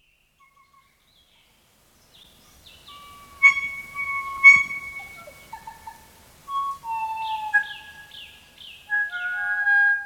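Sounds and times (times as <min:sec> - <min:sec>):
kokako singing slow organ-like whistled notes: 0:02.7 - 0:05.9, 0:06.5 - 0:10.0.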